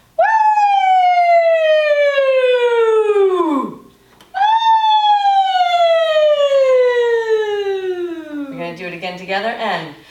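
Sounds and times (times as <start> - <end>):
voice imitating a siren gliding downward in pitch: 0.2 - 8.7.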